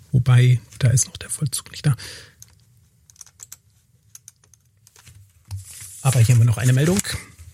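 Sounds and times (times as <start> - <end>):
speech: 0.1 - 2.4, 6.1 - 7.2
computer keyboard and mouse clicks: 2.4 - 5.0.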